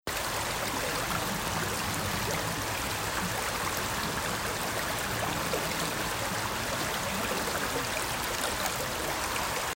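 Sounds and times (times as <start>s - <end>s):
babbling stream in Hanamaki: 0.1s - 9.7s.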